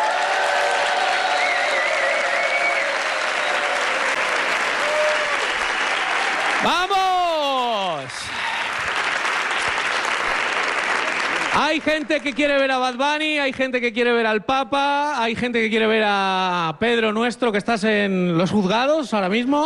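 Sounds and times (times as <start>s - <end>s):
large audience clapping and cheering at a comedy talk-show taping: 0.0s - 12.7s
speech: 6.6s - 7.0s, 11.7s - 19.6s
person shouting above the crowd: 6.6s - 8.1s.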